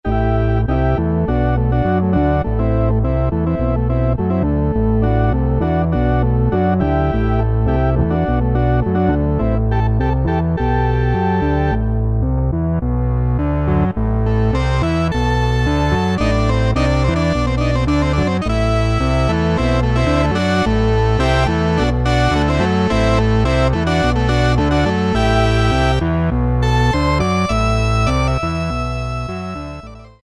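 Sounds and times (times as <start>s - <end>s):
Yamaha TG77 synthesizer OR Combo factory preset: 0.0s - 30.2s.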